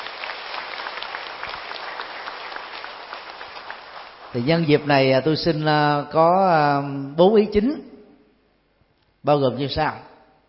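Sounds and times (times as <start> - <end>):
audience applause: 0.0 - 5.0
speech: 4.4 - 7.9, 9.2 - 10.1.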